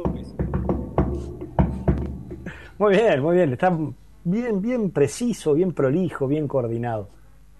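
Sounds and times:
knocks on a hard surface as a greeting: 0:00.0 - 0:02.7
soft thumps: 0:00.0 - 0:02.8
speech: 0:02.8 - 0:07.2.

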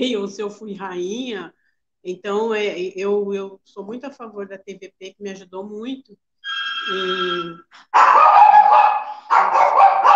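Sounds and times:
speech: 0:00.0 - 0:06.3, 0:06.9 - 0:10.1
dog barking loudly with strained barks: 0:07.9 - 0:10.1.

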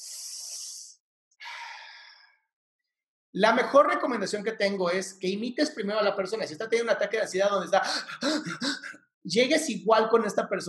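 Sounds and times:
deliberate deep breath in a breathing exercise: 0:01.4 - 0:02.4
speech: 0:03.3 - 0:10.6.

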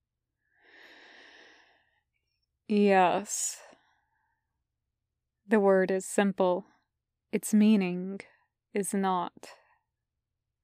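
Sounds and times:
long slow breath: 0:00.4 - 0:02.0
speech: 0:02.7 - 0:03.7, 0:05.5 - 0:06.7, 0:07.3 - 0:09.6.

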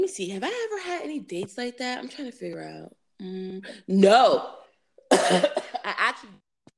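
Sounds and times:
speech: 0:00.0 - 0:06.5
single person coughing harshly on air: 0:05.1 - 0:06.0.

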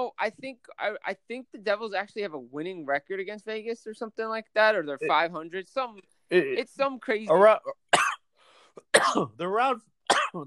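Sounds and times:
speech: 0:00.0 - 0:07.8, 0:08.8 - 0:10.4
person coughing: 0:08.0 - 0:08.2, 0:08.8 - 0:09.4, 0:10.1 - 0:10.4.

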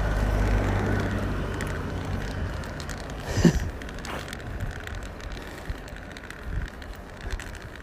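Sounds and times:
bus engine rumbling past outside: 0:00.0 - 0:04.5
steady outdoor noise: 0:00.0 - 0:07.8.

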